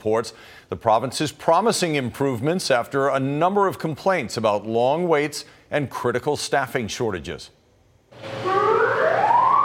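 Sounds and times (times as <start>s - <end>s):
speech: 0.0s - 7.6s
ambulance siren wailing: 8.2s - 9.6s.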